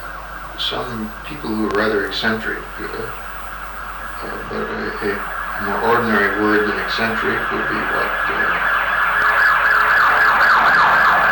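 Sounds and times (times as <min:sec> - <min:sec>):
ambulance siren wailing as the vehicle goes by: 0:00.0 - 0:11.3
speech: 0:00.6 - 0:03.3, 0:04.2 - 0:08.8.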